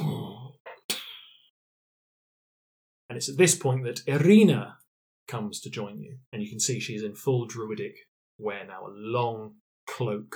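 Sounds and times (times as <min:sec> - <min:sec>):
voice imitating a deep exhalation from the jungle: 0:00.0 - 0:00.5
speech: 0:03.1 - 0:10.3.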